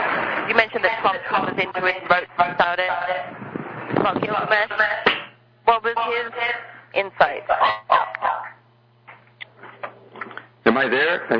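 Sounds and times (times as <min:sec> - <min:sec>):
faint steady hum: 0:00.0 - 0:11.3
speech: 0:00.5 - 0:08.4, 0:10.7 - 0:11.3
dog barking and yipping: 0:07.5 - 0:08.6.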